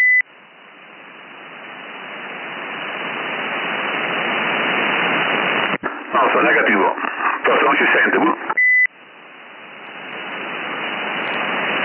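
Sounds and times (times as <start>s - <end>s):
CB radio beep from someone pressing the button: 0.0s - 0.2s, 5.6s - 8.9s
CB radio static hiss: 0.0s - 11.8s
speech: 6.3s - 8.4s.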